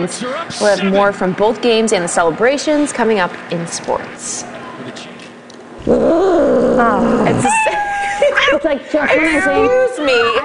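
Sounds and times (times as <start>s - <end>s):
speech: 0.0s - 5.0s, 5.9s - 10.4s
cat yowling and meowing: 5.8s - 8.0s.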